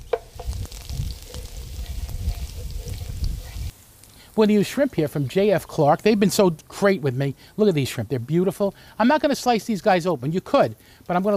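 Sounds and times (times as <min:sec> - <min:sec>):
wooden spoon stirring and scraping a pan: 0:00.0 - 0:03.7
peperoncino toasting in a pan: 0:00.0 - 0:11.3
speech: 0:04.4 - 0:11.3.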